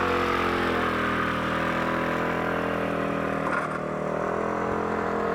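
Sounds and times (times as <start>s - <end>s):
motorcycle engine running: 0.0s - 5.2s.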